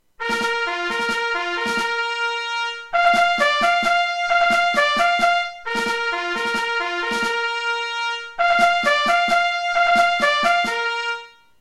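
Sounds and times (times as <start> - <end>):
drum: 0.2 - 2.0, 3.0 - 7.6, 8.4 - 10.8
bugle: 0.2 - 11.4.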